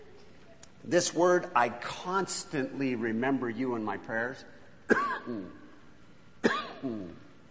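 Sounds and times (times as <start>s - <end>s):
speech: 0.8s - 5.6s, 6.4s - 7.2s
person in an audience coughing: 4.9s - 5.6s, 6.4s - 7.2s.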